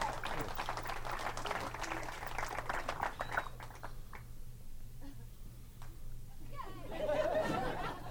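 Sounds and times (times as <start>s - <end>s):
comedy show audience in Las Vegas clapping: 0.0s - 4.3s
laughter: 6.8s - 8.0s.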